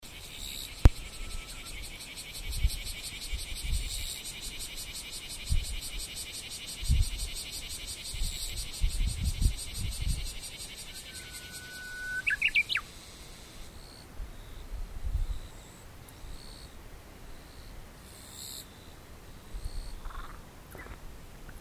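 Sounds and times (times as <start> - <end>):
Japanese bush warbler singing: 0.1 - 12.9
kirigirisu katydid chirping: 0.2 - 14.6, 19.5 - 21.0.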